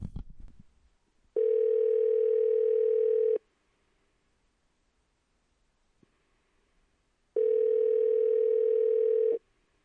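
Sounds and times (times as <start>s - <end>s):
telephone tone while a call is placed: 1.4s - 3.4s, 7.4s - 9.4s.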